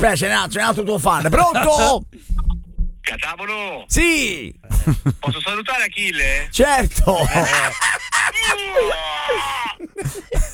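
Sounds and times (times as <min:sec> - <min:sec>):
speech: 0:00.0 - 0:02.4, 0:03.1 - 0:10.5
laughter: 0:04.5 - 0:05.6, 0:06.2 - 0:10.5
caller screaming over a telephone line: 0:08.4 - 0:09.8.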